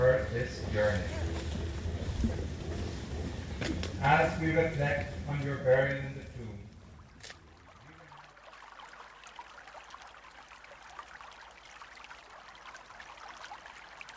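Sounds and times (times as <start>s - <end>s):
low rumble: 0.0s - 8.1s
river water flowing: 0.0s - 14.1s
speech: 0.2s - 1.5s, 3.6s - 6.2s.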